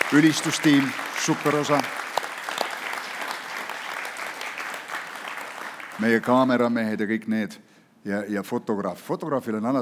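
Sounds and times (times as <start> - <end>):
audience applause at a church service: 0.0 - 6.6
speech: 0.1 - 2.0, 6.0 - 9.8.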